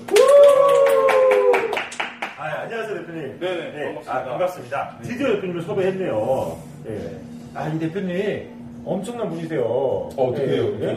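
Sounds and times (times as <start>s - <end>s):
hand clapping: 0.0s - 2.4s
speech: 2.7s - 10.9s.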